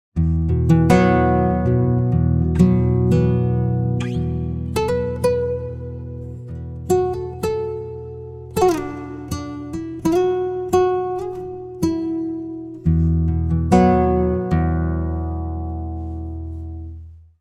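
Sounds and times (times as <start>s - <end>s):
pitch-shifted guitar: 0.2s - 17.0s.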